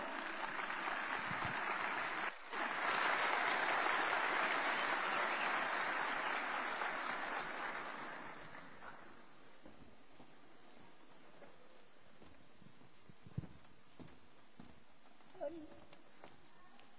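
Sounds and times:
audience applause at a 75th-anniversary ceremony of a national culture house: 0.0s - 9.2s.

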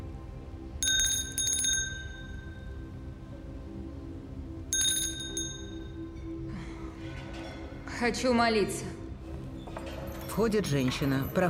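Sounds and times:
small hand bell ringing: 0.8s - 2.6s, 4.8s - 6.1s
speech: 8.0s - 8.9s, 10.4s - 11.4s.

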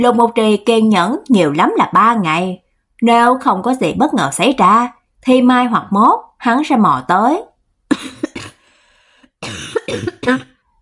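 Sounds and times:
speech: 0.0s - 8.5s, 9.4s - 10.5s
dry harsh throaty coughs: 7.9s - 8.7s, 9.4s - 10.6s.

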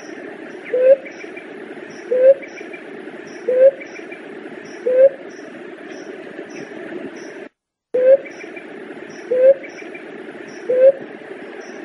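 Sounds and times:
Leptotila dove giving short low rising hooted notes: 0.0s - 5.4s, 8.0s - 11.8s.

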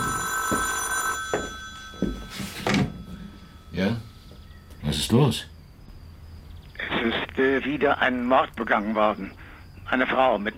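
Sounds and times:
telephone bell ringing in a radio crime drama: 0.0s - 4.6s
speech: 5.1s - 5.5s, 7.6s - 10.5s.

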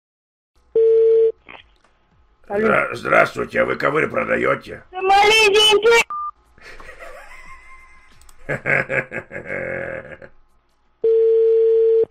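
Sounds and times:
telephone tone after a dropped call: 0.8s - 1.4s, 11.0s - 12.0s
speech: 2.5s - 6.1s, 8.5s - 10.4s
laughter: 6.6s - 10.4s.

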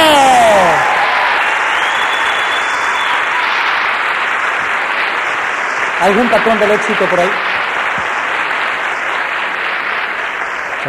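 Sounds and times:
group applauding: 0.0s - 10.8s
speech: 6.0s - 7.6s.

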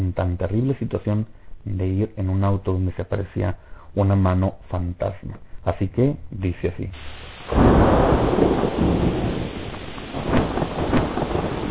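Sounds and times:
speech: 0.1s - 7.9s
heavy night rain pouring on a mountain road: 7.0s - 11.6s
sharp thunder crackles: 7.0s - 11.6s
thunder rumbling: 7.0s - 11.6s.

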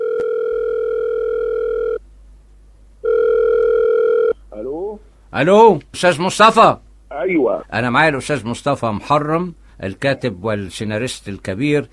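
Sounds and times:
buzzing telephone ringing tone of a call being placed: 0.0s - 2.0s, 3.0s - 4.4s
speech: 5.3s - 11.9s.

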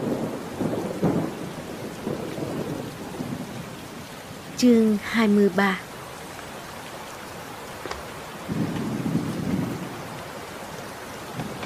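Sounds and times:
thunder rolling during a storm: 0.0s - 3.8s, 8.4s - 10.3s, 11.2s - 11.6s
steady rain hissing outside: 0.0s - 11.6s
speech: 4.6s - 5.8s.

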